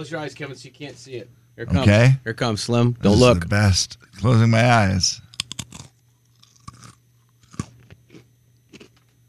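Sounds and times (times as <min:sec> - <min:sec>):
speech: 0:00.0 - 0:05.2
snack being chewed with soft crunches: 0:05.3 - 0:09.2.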